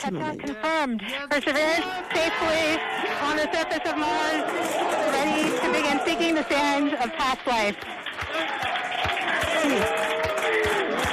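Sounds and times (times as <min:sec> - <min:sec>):
speech: 0:00.0 - 0:08.6, 0:09.6 - 0:10.0
room full of people clapping at mission control: 0:00.0 - 0:11.1
team cheering and whooping at mission control: 0:01.8 - 0:07.2, 0:07.8 - 0:11.1.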